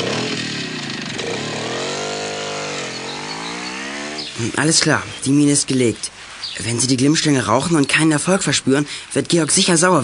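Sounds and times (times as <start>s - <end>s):
motorcycle engine accelerating while riding away: 0.0s - 4.5s
speech: 4.4s - 10.0s.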